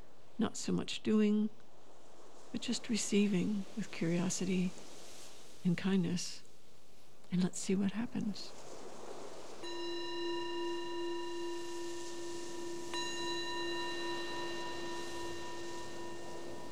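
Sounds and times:
speech: 0:00.4 - 0:01.6, 0:02.5 - 0:04.9, 0:05.6 - 0:06.4, 0:07.3 - 0:08.7
meditation bell struck during a guided meditation: 0:09.4 - 0:16.7.

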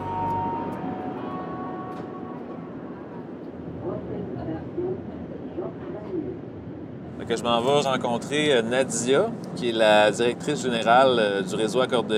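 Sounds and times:
thin electric whine of metro train: 0:00.0 - 0:02.5
metro train wheels and motor rumbling in Montreal: 0:00.0 - 0:12.1
speech: 0:07.3 - 0:12.1.

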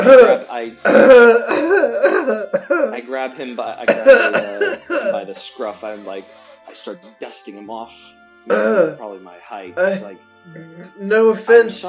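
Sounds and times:
voice acting out a choking cough with rasping throat-clearing: 0:00.0 - 0:03.0, 0:03.9 - 0:05.2, 0:08.5 - 0:09.0
speech: 0:00.0 - 0:11.8.

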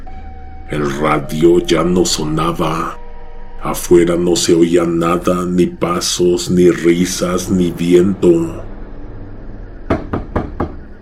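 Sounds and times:
low steady rumble: 0:00.0 - 0:10.9
speech: 0:00.7 - 0:03.0, 0:03.6 - 0:08.7
dry knocks on a door: 0:09.9 - 0:10.9.

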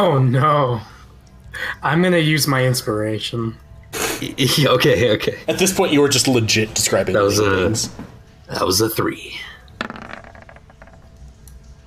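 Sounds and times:
speech: 0:00.0 - 0:01.0, 0:01.6 - 0:03.6, 0:04.2 - 0:09.9
dice clattering onto a hard table: 0:09.8 - 0:11.2.

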